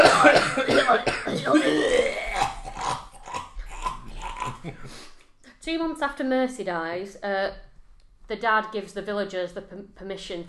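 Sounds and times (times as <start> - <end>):
person imitating a raspy dying cough: 0.0 - 4.9
speech: 6.0 - 7.7, 8.3 - 10.4.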